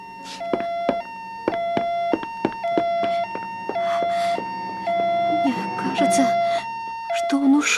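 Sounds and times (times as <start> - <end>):
police car siren wailing two-tone: 0.0 - 7.7
speech: 6.0 - 6.4, 7.3 - 7.7.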